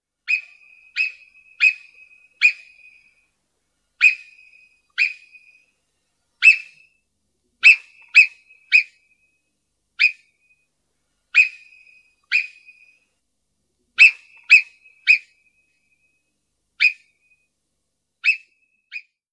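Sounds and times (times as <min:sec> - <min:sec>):
Alpine marmot Marmota marmota alarm whistles: 0:00.3 - 0:03.2, 0:04.0 - 0:05.7, 0:06.4 - 0:06.9, 0:07.6 - 0:09.0, 0:10.0 - 0:10.2, 0:11.4 - 0:13.0, 0:14.0 - 0:15.4, 0:16.8 - 0:17.1, 0:18.2 - 0:19.1.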